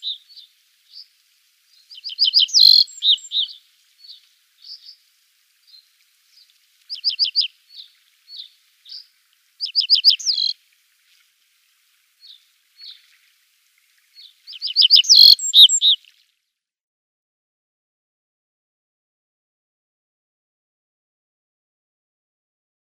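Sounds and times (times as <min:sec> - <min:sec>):
little bunting singing: 0:01.9 - 0:05.0, 0:06.9 - 0:10.5, 0:14.2 - 0:16.0.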